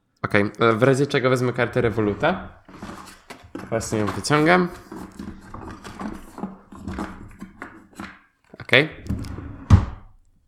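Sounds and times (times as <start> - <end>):
speech: 0.3 - 2.9, 3.7 - 5.3, 8.7 - 9.0
drawer sliding shut with a wooden thunk: 1.7 - 7.4, 9.0 - 10.2.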